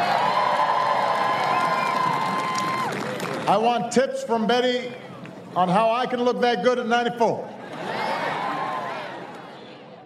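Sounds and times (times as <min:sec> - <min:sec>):
large crowd cheering with excited shouts and whoops: 0:00.0 - 0:03.3, 0:07.7 - 0:09.4
large crowd clapping: 0:00.0 - 0:03.8
speech: 0:03.5 - 0:07.5.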